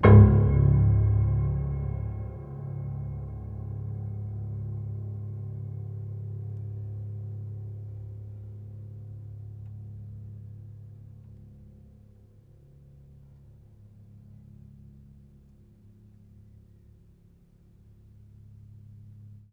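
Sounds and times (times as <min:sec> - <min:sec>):
piano hammer percussion with pedal: 0:00.0 - 0:07.8.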